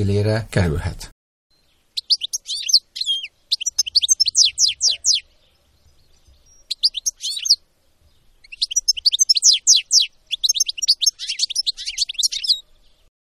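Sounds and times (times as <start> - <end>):
speech: 0.0 - 1.1
European goldfinch singing: 1.6 - 7.6, 8.2 - 12.6.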